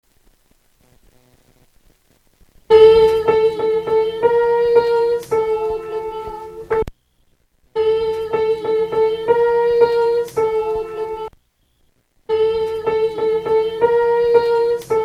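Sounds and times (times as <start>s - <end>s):
soprano singing: 2.7s - 6.8s, 7.8s - 11.3s, 12.3s - 15.0s.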